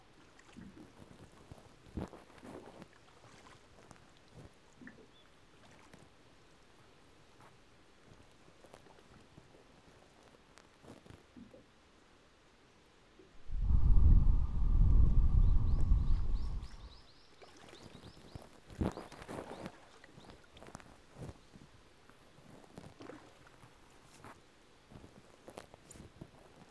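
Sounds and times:
loud rumble from ear cleaning: 0:13.4 - 0:17.1
ear cleaning scratching and scraping at the ear: 0:17.8 - 0:26.7.

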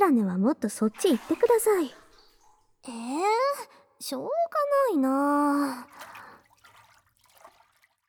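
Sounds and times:
speech: 0:00.0 - 0:02.0, 0:02.8 - 0:06.1
water trickling while rinsing someone's foamy back: 0:00.8 - 0:02.8, 0:05.2 - 0:08.0
water splashing while washing someone's back: 0:00.9 - 0:02.6, 0:05.4 - 0:08.0.

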